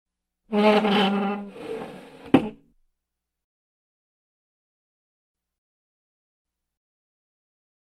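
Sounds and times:
stool chair being moved: 0.6 - 2.7.

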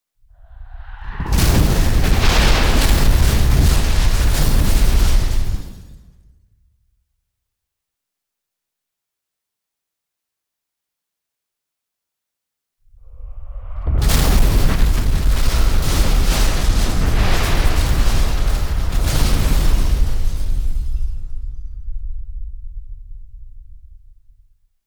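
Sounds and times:
meteor asteroid falling: 0.4 - 6.0, 13.1 - 24.5.

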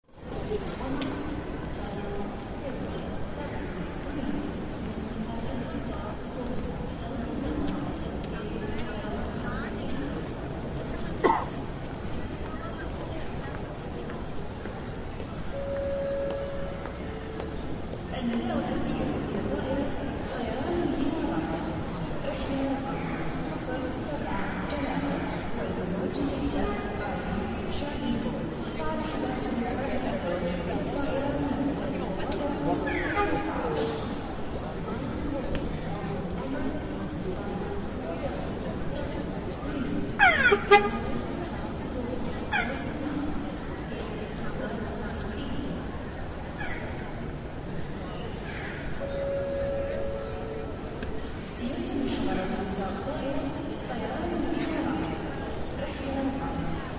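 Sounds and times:
airport terminal: 0.0 - 56.9.

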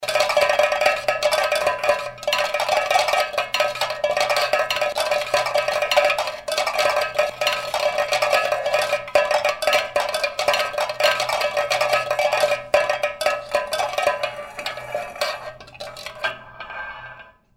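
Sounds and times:
tin cans rattling: 0.0 - 16.5.

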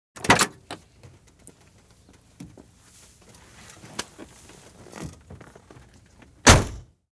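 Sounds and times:
car door slamming shut: 0.2 - 0.8, 6.4 - 6.8.

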